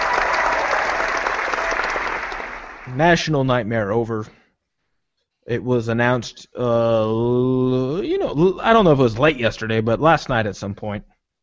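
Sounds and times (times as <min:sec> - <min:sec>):
crowd applauding: 0:00.0 - 0:03.0
speech: 0:02.9 - 0:04.4, 0:05.5 - 0:11.1.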